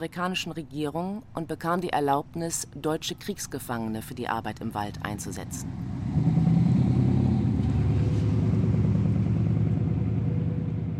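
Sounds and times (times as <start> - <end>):
speech: 0.0 - 6.6
car engine driving along a country road north of Berlin beside forest: 4.8 - 10.9.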